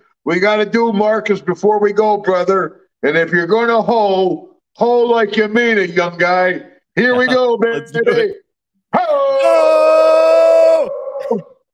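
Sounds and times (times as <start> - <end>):
speech: 0.2 - 9.8
people imitating a dog's howl: 9.0 - 11.6.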